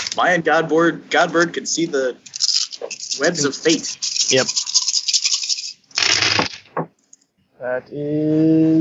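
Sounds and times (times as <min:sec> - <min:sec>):
speech: 0:00.2 - 0:04.8, 0:07.6 - 0:08.7
handful of ten-sided dice rattling and clattering across a hard surface: 0:02.3 - 0:06.7.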